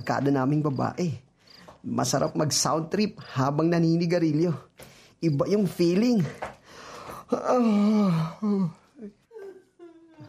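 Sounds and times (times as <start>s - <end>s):
speech: 0.0s - 1.2s, 1.8s - 6.5s, 7.3s - 9.2s
mother crying and moaning in her room: 7.3s - 10.2s.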